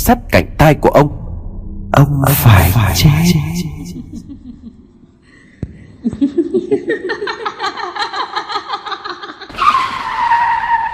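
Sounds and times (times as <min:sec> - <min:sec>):
speech: 0:00.1 - 0:01.2, 0:02.0 - 0:03.7, 0:06.0 - 0:07.8
rhythmic giggling laugh: 0:03.3 - 0:05.2, 0:06.0 - 0:09.5
car brakes screeching: 0:09.5 - 0:10.9
tires skidding: 0:09.5 - 0:10.9.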